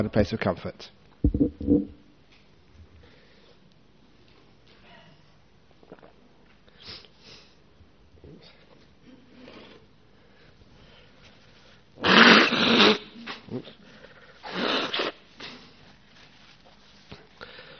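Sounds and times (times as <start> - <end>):
speech: 0.0 - 2.0, 13.5 - 13.8
person blowing nose at a Buddhist talk: 12.0 - 13.3, 14.4 - 15.6.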